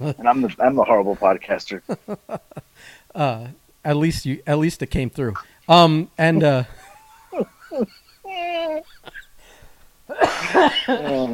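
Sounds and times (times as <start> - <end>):
speech: 0.0 - 6.8, 7.4 - 9.2, 10.1 - 11.3
laughter: 1.7 - 2.7, 6.4 - 9.4, 10.1 - 11.3
person coughing harshly while choking: 10.1 - 11.3.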